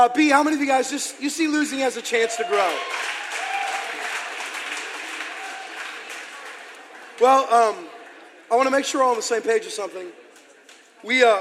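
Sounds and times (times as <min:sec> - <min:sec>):
speech: 0:00.0 - 0:03.4, 0:07.2 - 0:07.9, 0:08.5 - 0:10.2, 0:11.0 - 0:11.4
room full of people applauding: 0:02.4 - 0:07.8.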